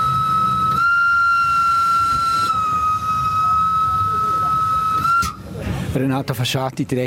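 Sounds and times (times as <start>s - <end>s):
Rhaetian Railway train whistle as train enters the Albula Tunnel: 0.0s - 5.5s
low rumble of the moving Rhaetian Railway train entering the Albula Tunnel: 0.0s - 7.0s
speech: 6.0s - 7.0s.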